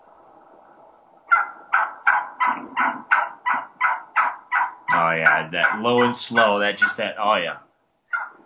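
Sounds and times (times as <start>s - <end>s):
aggressive wild turkey hen yelping on a Gould's turkey hunt in Arizona: 1.3s - 7.2s, 8.1s - 8.4s
speech: 5.1s - 7.7s.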